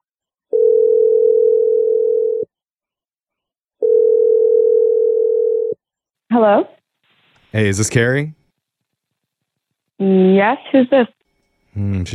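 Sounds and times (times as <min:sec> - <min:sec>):
ringback tone of an outgoing telephone call: 0:00.5 - 0:02.5, 0:03.8 - 0:05.8
speech: 0:06.3 - 0:06.8, 0:07.5 - 0:08.4, 0:10.0 - 0:11.2, 0:11.8 - 0:12.1.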